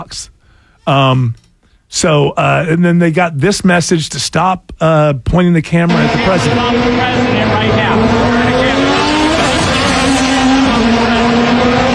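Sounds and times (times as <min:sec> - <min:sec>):
speech: 0:00.0 - 0:07.8
car engines roaring: 0:05.9 - 0:11.9.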